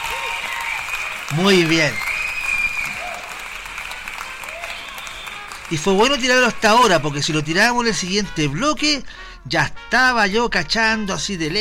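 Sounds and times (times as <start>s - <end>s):
audience applause: 0.0s - 7.8s
speech: 1.3s - 2.1s, 5.7s - 11.5s.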